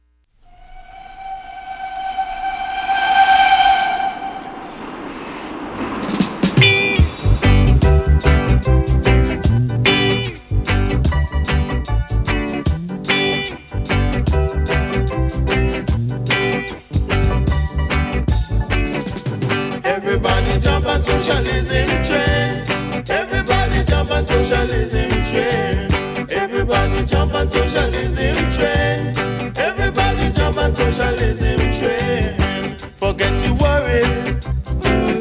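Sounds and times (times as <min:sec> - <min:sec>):
train-style whistle: 0:00.4 - 0:07.2
swelling rumble: 0:00.4 - 0:08.8
upbeat train-themed song with drums and band groove: 0:06.6 - 0:35.2.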